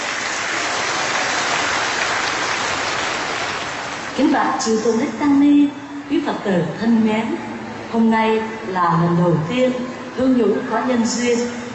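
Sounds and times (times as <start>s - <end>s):
large audience applauding at a Buddhist vegetarian food festival: 0.0s - 4.2s
speech: 4.2s - 11.6s.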